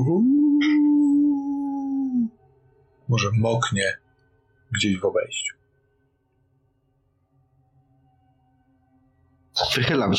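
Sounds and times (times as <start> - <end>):
human voice imitating a dog howling outside on a rainy October night: 0.0 - 2.4
speech: 3.1 - 4.0, 4.7 - 5.6, 9.6 - 10.1.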